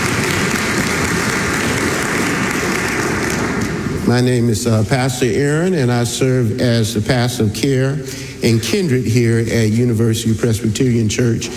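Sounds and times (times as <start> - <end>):
audience clapping hands in praise: 0.0 - 4.5
speech: 4.1 - 11.5.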